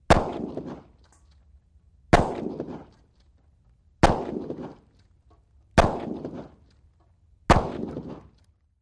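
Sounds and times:
12 gauge shotgun: 0:00.0 - 0:01.0, 0:02.1 - 0:03.0, 0:04.0 - 0:04.9, 0:05.8 - 0:06.6, 0:07.5 - 0:08.4.

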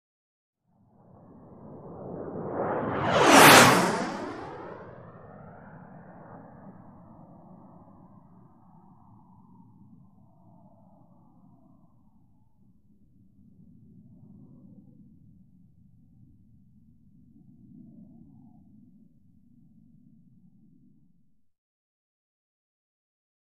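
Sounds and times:
Gnat aircraft flying by at low level in fast cruise: 0:01.0 - 0:07.9.

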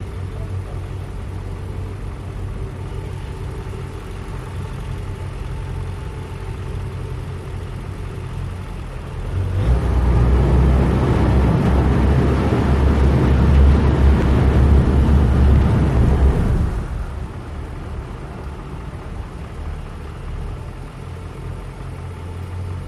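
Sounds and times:
boat engine idling and moving: 0:00.0 - 0:22.8.

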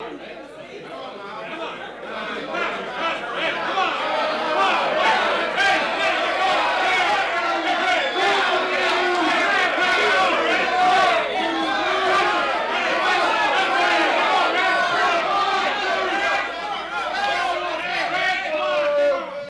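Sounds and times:
angry crowd: 0:00.0 - 0:19.4.

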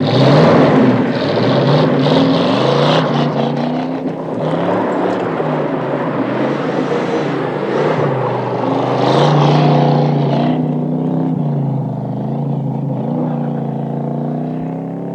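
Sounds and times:
Mustang car engine doing figure: 0:00.0 - 0:15.1.

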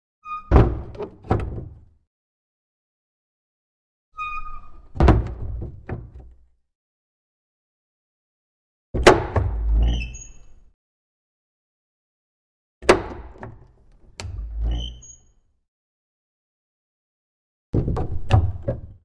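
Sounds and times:
small wooden door crash slamming: 0:00.4 - 0:01.9, 0:05.0 - 0:06.3, 0:09.0 - 0:09.8, 0:12.8 - 0:13.6, 0:17.8 - 0:19.0.

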